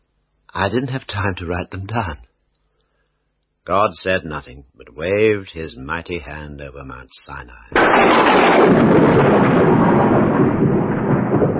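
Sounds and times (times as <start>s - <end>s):
speech: 0.6s - 2.3s, 3.7s - 10.6s
thunder crash from a lightning flash: 7.8s - 11.5s.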